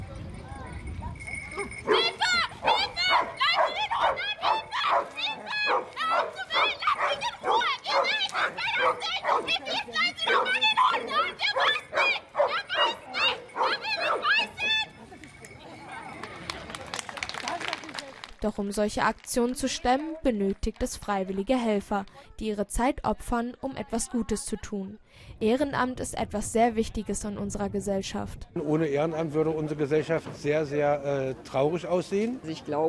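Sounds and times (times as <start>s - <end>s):
several dogs barking: 1.6s - 14.6s
speech: 18.6s - 32.8s.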